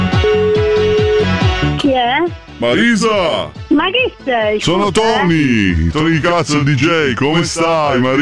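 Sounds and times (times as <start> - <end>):
steady electronic tone: 0.1 - 1.5
speech: 2.6 - 8.2.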